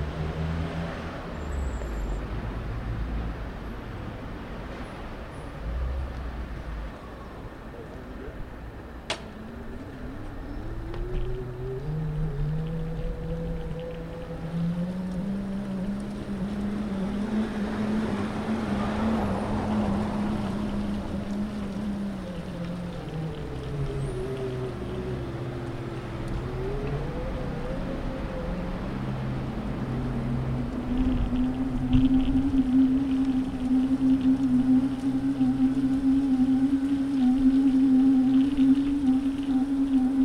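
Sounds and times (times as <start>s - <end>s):
rolling road and wind noise from a bicycle ride: 0.0s - 40.2s
dynamo-powered singing bicycle humming tone through a speaker: 9.3s - 40.2s.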